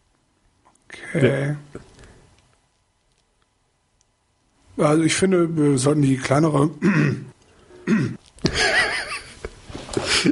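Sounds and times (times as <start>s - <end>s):
speech: 1.1s - 1.9s, 4.8s - 7.3s
person coughing: 6.8s - 7.2s, 7.9s - 8.2s
raspy hoarse throat clearing: 6.8s - 7.3s, 7.9s - 8.2s
laughter: 8.5s - 10.3s.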